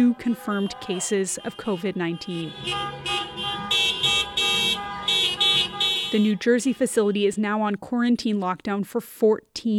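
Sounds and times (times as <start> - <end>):
speech: 0.0 - 3.4, 6.1 - 9.7
car horns honking at a protest: 0.0 - 7.2
traffic noise: 0.0 - 7.6.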